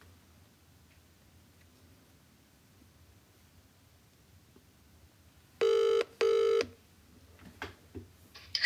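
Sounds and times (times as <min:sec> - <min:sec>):
phone line ringing as a call is placed: 0:05.6 - 0:06.7.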